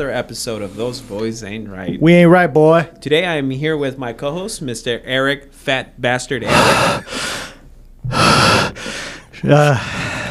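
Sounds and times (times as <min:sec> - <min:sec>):
speech: 0:00.0 - 0:07.4, 0:09.4 - 0:10.0
heavy breathing into a microphone: 0:06.5 - 0:10.2.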